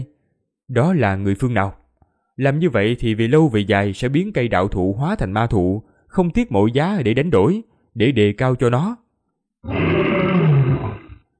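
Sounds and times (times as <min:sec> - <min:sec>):
speech: 0:00.7 - 0:01.8, 0:02.4 - 0:09.0, 0:09.6 - 0:10.1
golden lion roaring: 0:09.6 - 0:11.3.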